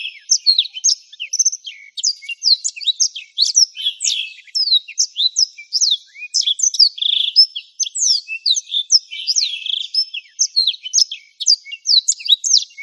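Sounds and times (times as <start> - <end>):
Black-throated canary singing: 0.0 - 12.8.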